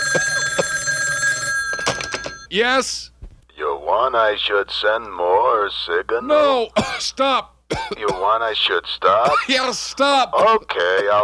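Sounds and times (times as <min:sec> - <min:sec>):
office telephone ringing: 0:00.0 - 0:02.5
speech: 0:02.5 - 0:03.1, 0:03.9 - 0:11.2.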